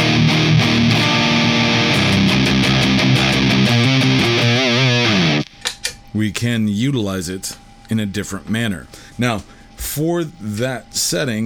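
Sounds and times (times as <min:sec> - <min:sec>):
electric guitar played through Super Axolotl effects pedal: 0:00.0 - 0:05.6
speech: 0:06.2 - 0:11.4.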